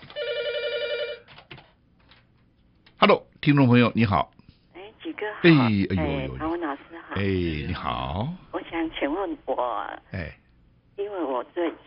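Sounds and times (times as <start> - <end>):
telephone ringing for an incoming listener call-in: 0.0 - 1.3
speech: 3.0 - 4.4, 5.4 - 6.5, 7.2 - 8.4, 9.0 - 10.4.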